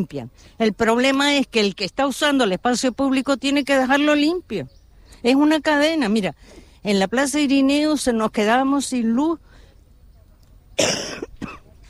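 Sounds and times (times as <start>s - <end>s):
speech: 0.0s - 9.5s, 10.8s - 11.6s
person with a month-long cough coughing: 10.8s - 11.7s.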